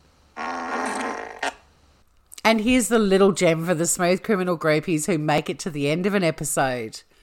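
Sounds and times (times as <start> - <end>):
long buzzy fart: 0.4 - 1.7
speech: 2.5 - 7.1.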